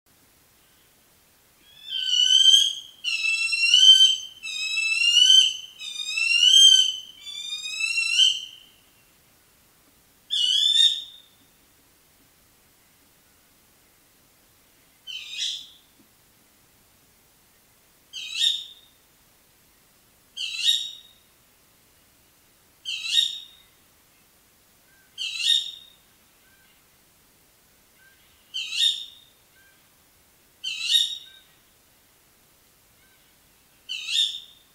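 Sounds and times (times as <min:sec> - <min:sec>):
tawny owl calling: 0:01.6 - 0:08.8, 0:10.3 - 0:11.3, 0:15.1 - 0:15.8, 0:18.1 - 0:18.9, 0:20.4 - 0:21.1, 0:22.8 - 0:23.6, 0:24.9 - 0:26.8, 0:28.0 - 0:29.8, 0:30.6 - 0:31.6, 0:33.9 - 0:34.6.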